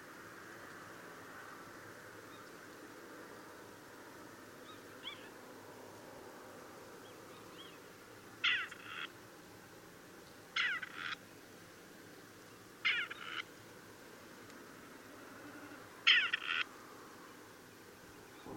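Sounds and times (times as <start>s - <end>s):
quiet background hiss: 0.0s - 18.5s
Grey partridge giving harsh grating rasped calls: 10.6s - 11.2s, 12.8s - 13.4s, 16.0s - 16.7s.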